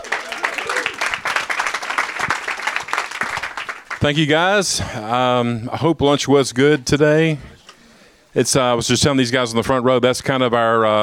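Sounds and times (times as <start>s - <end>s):
room full of people applauding: 0.0s - 4.4s
speech: 4.0s - 7.5s, 8.4s - 11.0s.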